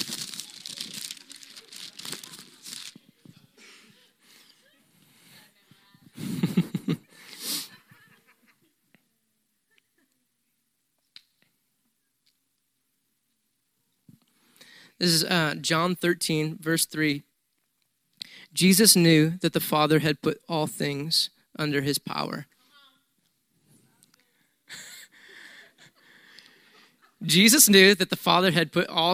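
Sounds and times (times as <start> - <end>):
book pages being turned: 0.0 - 3.2
laughter: 3.4 - 5.0, 6.1 - 8.8, 24.7 - 27.3
speech: 15.0 - 17.3, 18.6 - 22.6, 27.2 - 29.1.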